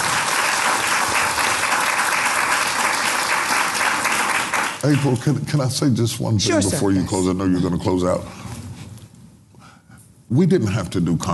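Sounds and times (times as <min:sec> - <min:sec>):
audience applause: 0:00.0 - 0:05.1
speech: 0:04.8 - 0:08.5, 0:10.3 - 0:11.3.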